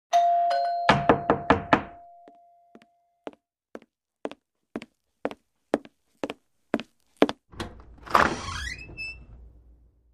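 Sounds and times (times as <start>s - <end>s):
doorbell ringing: 0.1s - 3.2s.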